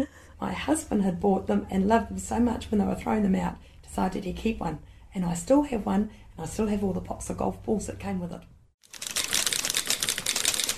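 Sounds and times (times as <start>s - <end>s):
speech: 0.0s - 8.5s
typewriter keys clacking: 8.9s - 10.7s.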